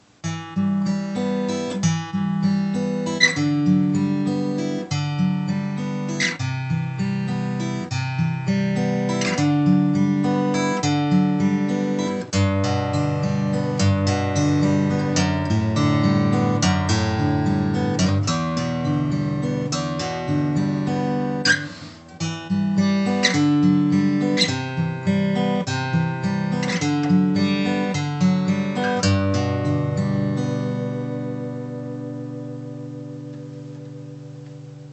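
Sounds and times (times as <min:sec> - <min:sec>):
fingerstyle jumbo guitar: 0:00.0 - 0:34.9.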